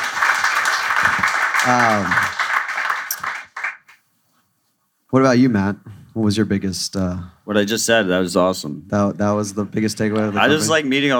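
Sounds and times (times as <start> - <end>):
audience applause at a Bitcoin event: 0.0 - 3.8
speech: 1.6 - 2.3, 5.2 - 11.1.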